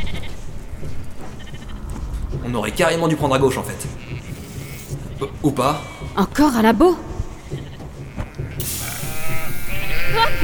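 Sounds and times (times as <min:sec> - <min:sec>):
speech: 0:02.4 - 0:04.0, 0:05.2 - 0:07.1
sheep bleating: 0:03.8 - 0:05.0, 0:07.4 - 0:10.4.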